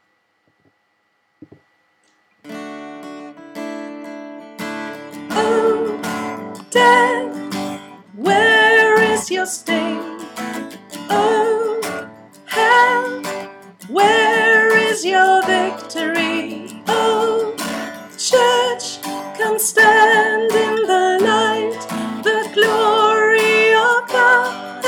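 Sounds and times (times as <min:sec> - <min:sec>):
soprano singing: 0:05.2 - 0:24.8.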